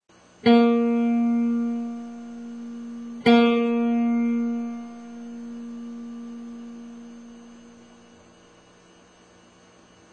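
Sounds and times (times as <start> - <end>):
acoustic instrument being tuned up: 0.4 - 8.2.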